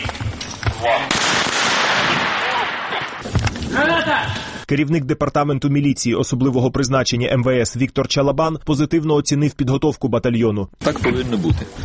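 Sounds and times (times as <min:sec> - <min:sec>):
speech: 0:00.8 - 0:01.2, 0:04.7 - 0:11.8
live-ammunition gunfire during police hostage rescue training: 0:00.8 - 0:04.5.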